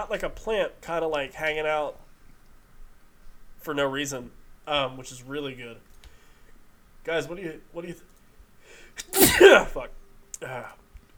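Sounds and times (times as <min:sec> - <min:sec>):
speech: 0:00.0 - 0:02.0, 0:03.6 - 0:05.9, 0:07.0 - 0:08.1, 0:09.0 - 0:11.1
single loud sneeze after a brief sharp inhale: 0:09.0 - 0:09.8.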